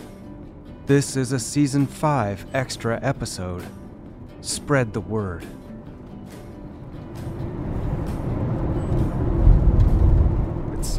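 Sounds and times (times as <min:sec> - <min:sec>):
speech: 0:00.9 - 0:03.8, 0:04.4 - 0:05.6
car driving with low road rumble and hiss: 0:03.8 - 0:10.9.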